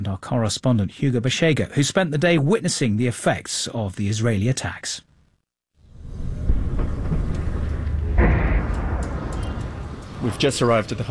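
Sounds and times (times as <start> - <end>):
speech: 0.0 - 5.1, 10.2 - 11.1
steady low roar: 5.9 - 11.0
deep rumbling explosions heard from a hospital in southern Lebanon: 5.9 - 11.1.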